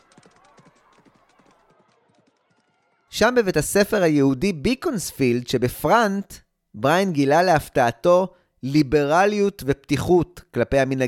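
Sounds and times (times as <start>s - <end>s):
horse hooves clip-clopping: 0.0s - 2.7s
speech: 3.2s - 11.0s.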